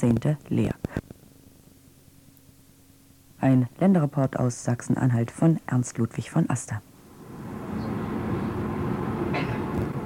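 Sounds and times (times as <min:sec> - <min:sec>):
speech: 0:00.0 - 0:01.0, 0:03.4 - 0:06.9
tram rattling slowly over a bridge: 0:07.4 - 0:10.0.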